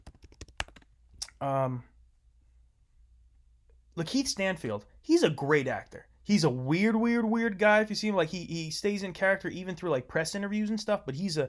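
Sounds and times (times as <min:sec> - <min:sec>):
crisp computer keyboard typing: 0:00.0 - 0:00.9
speech: 0:01.4 - 0:01.9, 0:04.0 - 0:11.4.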